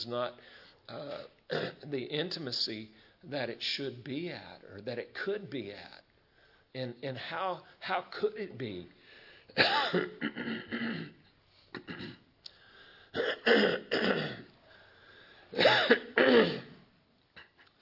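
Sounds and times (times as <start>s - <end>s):
speech: 0.0s - 6.0s, 6.7s - 12.2s, 13.2s - 14.5s, 15.5s - 16.6s
throat clearing after inhaling garden dust while tilling: 9.6s - 12.3s, 13.2s - 14.5s, 15.6s - 16.8s.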